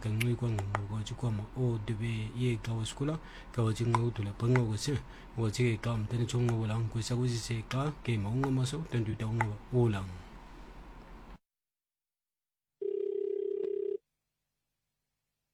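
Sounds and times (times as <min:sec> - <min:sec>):
speech: 0:00.0 - 0:10.3
telephone line ringing before voicemail picks up: 0:12.8 - 0:14.0.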